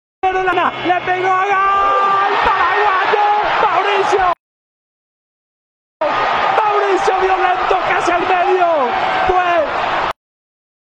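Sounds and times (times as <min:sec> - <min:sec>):
player shouting after striking the ball: 0:00.2 - 0:04.4, 0:06.0 - 0:09.8
speech: 0:00.3 - 0:03.2
dense roar of stadium crowd noise: 0:00.3 - 0:04.4, 0:06.0 - 0:10.2.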